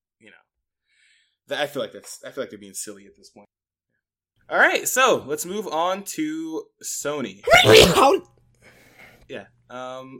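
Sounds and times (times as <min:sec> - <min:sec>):
speech: 0:01.5 - 0:03.6, 0:04.5 - 0:08.4, 0:09.3 - 0:10.1
loud sneeze: 0:07.5 - 0:08.2.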